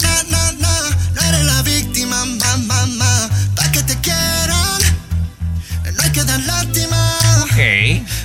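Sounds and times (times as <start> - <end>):
pop song with sung vocals, pulsing bass beat and backing instrumentation: 0.0 - 8.2.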